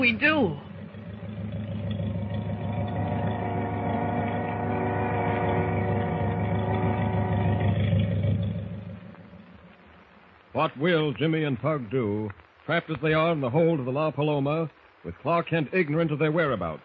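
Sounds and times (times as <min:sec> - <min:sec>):
speech: 0:00.0 - 0:00.7, 0:10.6 - 0:16.8
boat motors droning as ship pulls out: 0:00.0 - 0:09.4.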